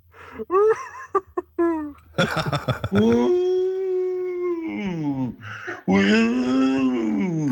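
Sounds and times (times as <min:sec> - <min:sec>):
laughter: 0:00.6 - 0:03.4
callers imitating wolf howls over the phone: 0:03.0 - 0:07.5.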